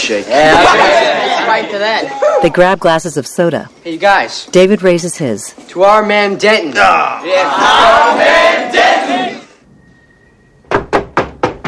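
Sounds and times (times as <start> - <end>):
speech: 0.1 - 9.1
laughter: 0.3 - 2.3
knocking on a door: 10.7 - 11.6.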